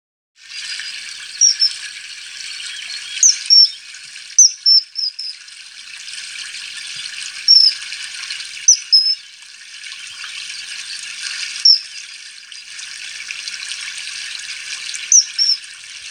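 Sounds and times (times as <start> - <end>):
running trickling water: 0.4 - 16.0
common kingfisher high whistling calls: 1.4 - 1.8, 4.4 - 5.4, 7.5 - 7.7, 8.7 - 9.2, 11.6 - 11.9, 15.1 - 15.6.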